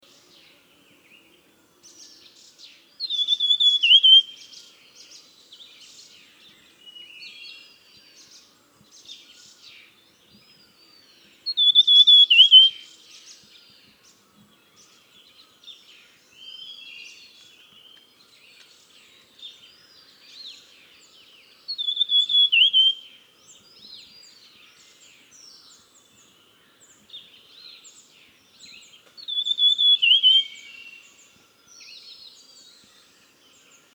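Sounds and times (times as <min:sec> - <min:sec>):
Beautiful Sibia Heterophasia pulchella: 0:00.0 - 0:33.9.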